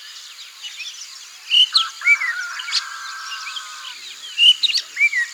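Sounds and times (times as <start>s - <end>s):
Rufous-necked laughingthrush calling: 1.5s - 5.1s.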